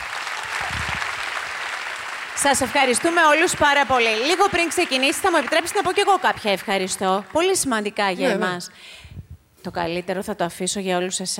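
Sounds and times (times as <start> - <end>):
audience applause with many hands clapping: 0.0 - 8.2
speech: 2.4 - 9.0, 9.6 - 11.3.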